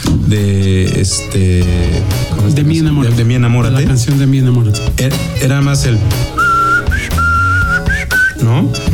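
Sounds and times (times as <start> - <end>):
speech: 0.3 - 6.4, 8.4 - 8.9
low accompanying musical tones: 0.3 - 8.9
person whistling a short song melody: 6.3 - 8.8.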